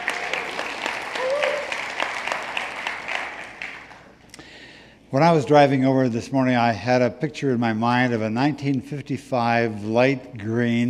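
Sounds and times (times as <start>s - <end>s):
room full of people applauding: 0.0s - 4.2s
speech: 5.1s - 10.8s.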